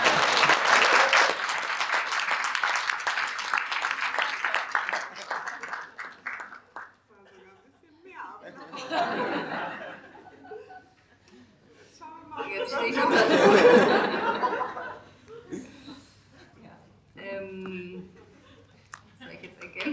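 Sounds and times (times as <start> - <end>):
audience applause: 0.0 - 7.1
laughter: 7.1 - 16.8, 17.7 - 19.9.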